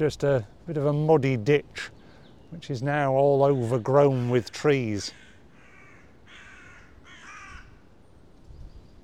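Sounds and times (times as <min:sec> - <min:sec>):
speech: 0:00.0 - 0:05.2
crows cawing overhead: 0:05.0 - 0:08.0.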